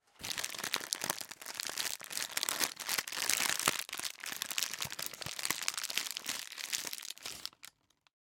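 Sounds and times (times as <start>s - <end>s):
wrapping paper handling: 0.2s - 8.1s.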